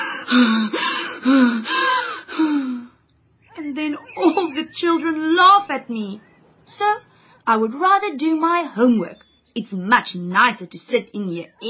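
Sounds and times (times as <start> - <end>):
person acting out out-of-breath panting after exercise: 0.0 - 2.9
speech: 0.3 - 1.7, 4.7 - 11.6
laughter: 3.9 - 4.8.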